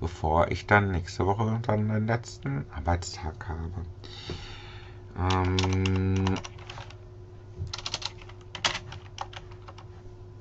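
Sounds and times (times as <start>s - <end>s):
speech: 0.0s - 4.6s, 5.2s - 6.7s
low steady hum: 0.0s - 10.4s
typing on a computer keyboard: 5.3s - 7.0s, 7.7s - 9.8s.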